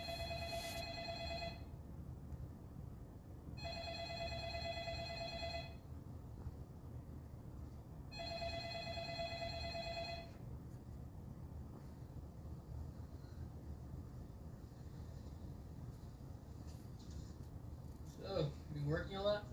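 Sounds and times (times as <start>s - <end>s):
telephone ringing: 0.0s - 1.8s, 3.6s - 5.9s, 8.1s - 10.4s
low rumble: 0.0s - 19.5s.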